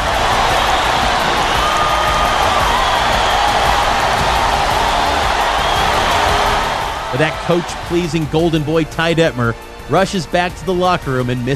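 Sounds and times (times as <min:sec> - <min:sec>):
huge football stadium crowd roaring and cheering after a touchdown: 0:00.0 - 0:11.5
speech: 0:07.2 - 0:11.5.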